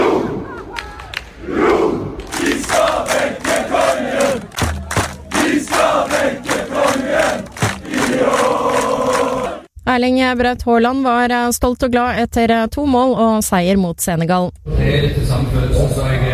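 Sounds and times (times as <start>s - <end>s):
football fans chanting in the streets: 0.0s - 0.8s, 1.4s - 9.7s
large crowd of football fans cheering and shouting in the streets at night: 2.3s - 9.7s
speech: 10.0s - 16.2s.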